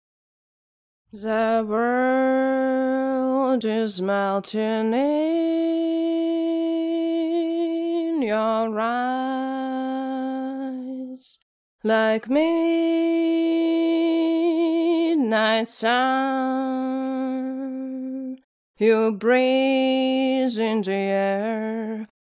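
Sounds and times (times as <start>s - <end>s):
electronic acapella vocals in C: 1.1s - 22.2s.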